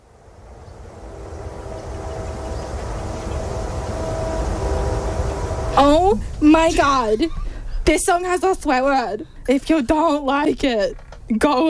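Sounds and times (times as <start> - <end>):
train rumbling along railroad tracks: 0.0 - 9.2
faint tonal whines: 0.0 - 9.8
speech: 5.8 - 11.6.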